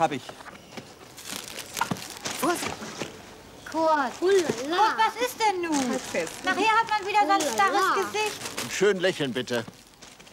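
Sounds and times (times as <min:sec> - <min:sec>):
speech: 0:00.0 - 0:00.5, 0:02.4 - 0:03.0, 0:03.7 - 0:09.8
held plastic bag crinkling and rustling: 0:01.1 - 0:02.6, 0:05.5 - 0:10.3.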